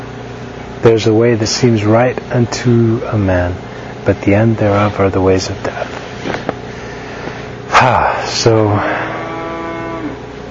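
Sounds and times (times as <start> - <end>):
faint hum: 0.0 - 10.5
speech: 0.8 - 6.0, 7.8 - 9.0
cow mooing: 8.8 - 10.3.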